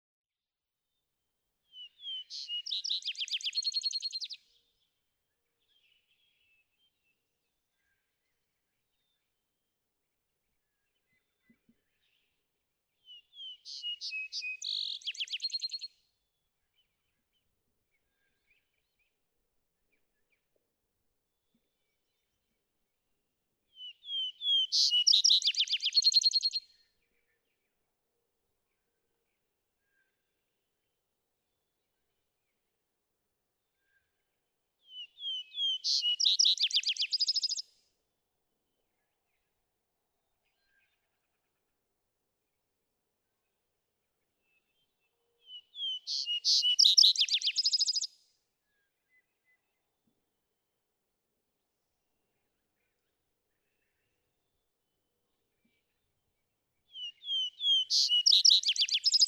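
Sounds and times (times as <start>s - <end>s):
vesper sparrow calling: 1.8s - 4.4s, 13.4s - 15.9s, 23.8s - 26.6s, 34.9s - 37.6s, 45.5s - 48.1s, 57.0s - 59.2s.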